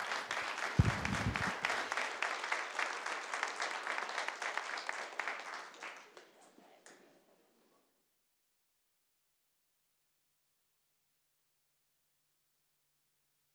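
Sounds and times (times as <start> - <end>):
audience applause: 0.0 - 6.3
low thump: 0.8 - 1.6.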